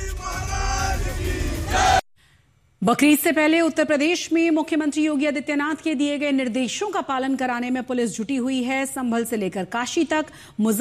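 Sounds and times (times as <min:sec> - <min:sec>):
crowd shouting slogans at a protest in a Ghatkopar housing society: 0:00.0 - 0:02.0
speech: 0:02.8 - 0:10.7.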